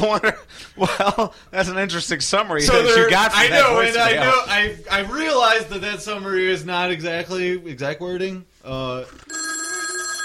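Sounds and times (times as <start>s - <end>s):
speech: 0.0s - 9.5s
telephone ringing with an incoming call: 9.3s - 10.2s.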